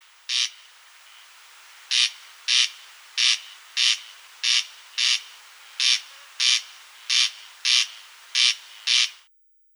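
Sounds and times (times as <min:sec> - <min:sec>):
corncrake calling: 0:00.3 - 0:00.8, 0:01.9 - 0:09.3.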